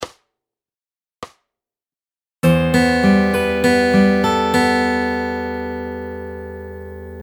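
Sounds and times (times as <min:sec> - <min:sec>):
fingerpicked guitar lick: 0:02.4 - 0:07.2.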